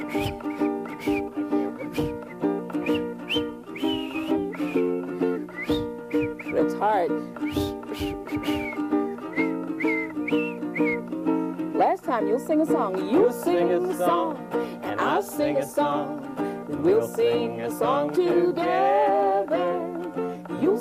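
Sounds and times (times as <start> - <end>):
person whistling a melody: 0.0 - 11.4
steady musical backing: 0.0 - 20.8
speech: 12.2 - 14.5, 15.2 - 16.2, 16.8 - 19.1.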